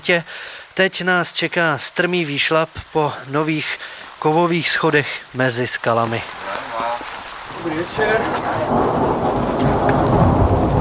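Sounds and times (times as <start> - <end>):
speech: 0.0 - 6.6, 7.6 - 10.4
heavy rain: 0.0 - 10.7
deep thunder rumbling: 7.4 - 10.7.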